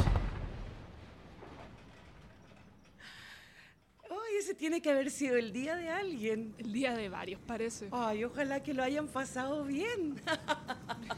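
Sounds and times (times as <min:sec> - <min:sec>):
deep rumbling distant explosion boom with tail: 0:00.0 - 0:02.4
speech: 0:04.5 - 0:11.1
laughter: 0:10.1 - 0:11.1.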